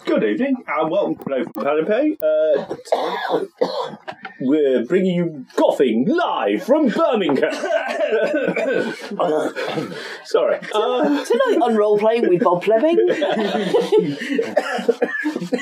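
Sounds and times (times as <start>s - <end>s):
speech: 0.2s - 15.6s
man coughing and choking: 2.6s - 4.2s, 7.4s - 10.0s, 13.4s - 15.6s
laughter: 7.0s - 15.6s.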